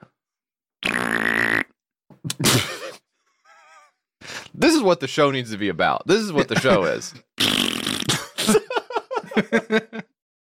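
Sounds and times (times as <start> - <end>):
sputtering fart: 0.8 - 1.8, 7.4 - 8.4
laughter: 2.3 - 3.0, 6.1 - 7.2, 8.2 - 10.1
speech: 4.8 - 7.3, 9.4 - 10.0.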